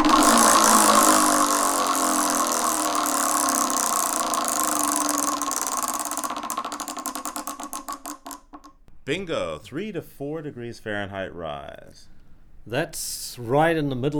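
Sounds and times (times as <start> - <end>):
game wheel spinning with a whirring rattle and clicks: 0.0 - 8.8
speech: 9.1 - 14.1.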